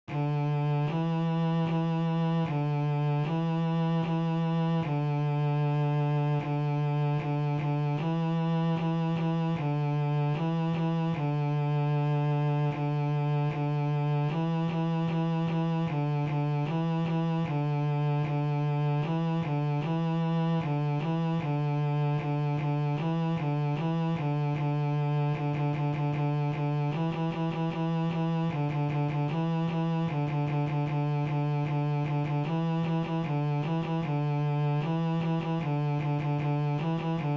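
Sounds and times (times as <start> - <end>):
two notes on the D string of a bass: 0.0 - 37.3.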